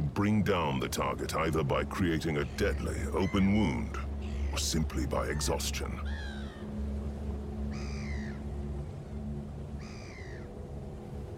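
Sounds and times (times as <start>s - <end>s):
steady low rumble of wind or surf: 0.0s - 11.3s
speech: 0.2s - 6.4s
great black-backed gull deep laughing cry: 1.0s - 6.8s, 7.6s - 10.6s.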